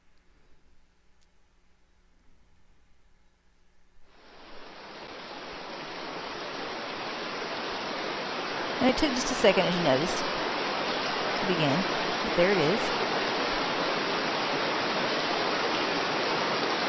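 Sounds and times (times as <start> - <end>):
heavy rain recording played by smart speaker: 4.1 - 16.8
speech: 8.8 - 10.4, 11.5 - 13.1.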